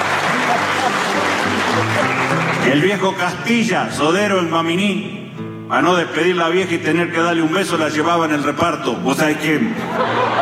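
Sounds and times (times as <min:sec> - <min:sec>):
laughter: 0:00.0 - 0:02.7, 0:09.7 - 0:10.3
audience applause: 0:00.0 - 0:02.9
speech: 0:02.6 - 0:10.3.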